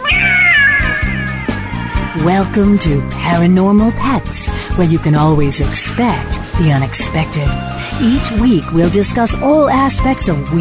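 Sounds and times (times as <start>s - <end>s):
cat meowing: 0.0s - 3.7s
speech: 2.2s - 10.6s.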